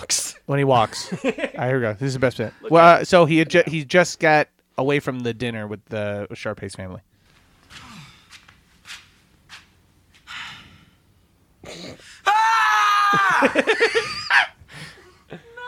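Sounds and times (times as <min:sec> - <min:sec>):
speech: 0:00.0 - 0:07.1, 0:13.1 - 0:15.5
laughter: 0:00.8 - 0:01.6, 0:02.6 - 0:03.9, 0:13.1 - 0:15.6
man's short high-pitched scream: 0:12.2 - 0:13.7.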